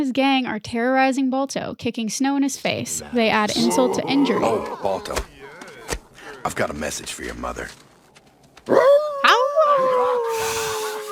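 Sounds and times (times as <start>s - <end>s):
speech: 0.0s - 5.4s, 6.4s - 7.8s
laughter: 2.7s - 7.8s
gang of dogs howling together mockingly in an alleyway: 3.5s - 6.6s, 8.3s - 11.1s.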